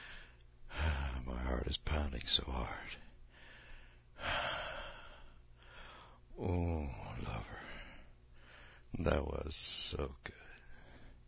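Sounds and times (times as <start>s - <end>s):
heavy breathing while catching breath: 0.0s - 1.2s, 3.3s - 9.0s, 10.5s - 11.2s
speech: 1.3s - 3.0s, 6.4s - 7.6s, 8.9s - 10.5s.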